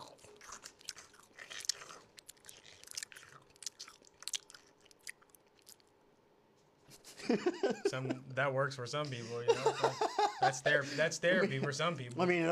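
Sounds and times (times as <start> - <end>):
chewing sour gummy candy: 0.0 - 6.0
laughter: 7.0 - 8.3, 9.0 - 12.0
speech: 7.3 - 12.5.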